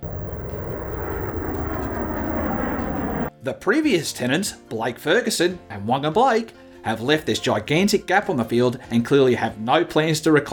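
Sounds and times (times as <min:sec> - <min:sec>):
Boeing 747 jet airliner engine roaring: 0:00.0 - 0:03.3
speech: 0:03.4 - 0:10.5.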